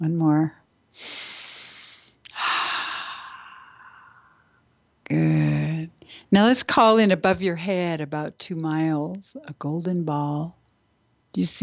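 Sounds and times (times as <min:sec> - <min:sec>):
speech: 0:00.0 - 0:01.3, 0:06.3 - 0:10.6, 0:11.4 - 0:11.6
slow deep breathing: 0:01.1 - 0:04.6.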